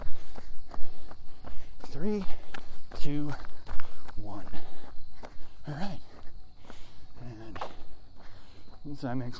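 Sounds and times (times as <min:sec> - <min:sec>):
footsteps walking up a hill: 0:00.0 - 0:09.3
speech: 0:02.0 - 0:02.4, 0:03.0 - 0:03.5, 0:09.0 - 0:09.3.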